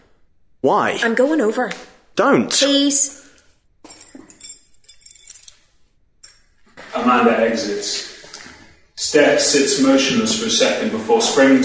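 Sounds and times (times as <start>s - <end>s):
speech: 0.6s - 3.3s, 7.0s - 8.1s, 9.0s - 11.6s
bunch of keys jangling as they are handed over: 3.8s - 6.6s.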